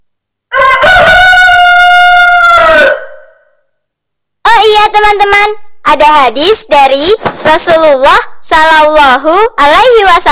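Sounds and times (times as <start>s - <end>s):
rooster crowing: 0.5s - 3.6s
speech: 5.1s - 10.3s.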